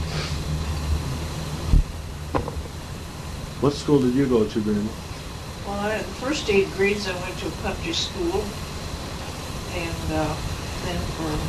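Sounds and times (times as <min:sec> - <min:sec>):
road traffic rumble: 0:00.0 - 0:11.4
brief thumps: 0:01.7 - 0:02.7
speech: 0:03.6 - 0:05.1, 0:05.7 - 0:08.6, 0:09.8 - 0:11.4.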